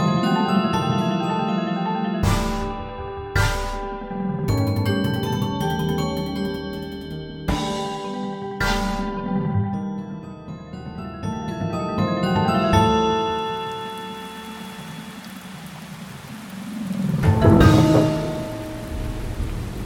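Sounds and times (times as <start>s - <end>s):
sustained musical tones: 0.0s - 15.2s, 17.2s - 19.6s
rain falling: 13.1s - 19.8s
distant thunder rumble: 15.3s - 19.8s.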